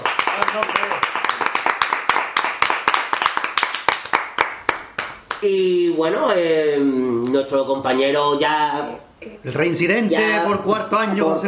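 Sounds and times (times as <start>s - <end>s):
small crowd applauding: 0.0s - 5.6s
speech: 0.6s - 1.0s, 5.4s - 11.4s.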